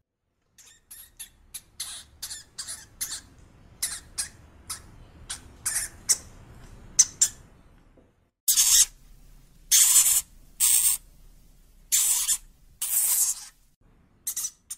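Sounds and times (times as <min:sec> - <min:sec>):
hamster squeaking: 0:00.5 - 0:07.4, 0:08.5 - 0:09.0, 0:09.7 - 0:11.0, 0:11.9 - 0:13.6, 0:14.2 - 0:14.7.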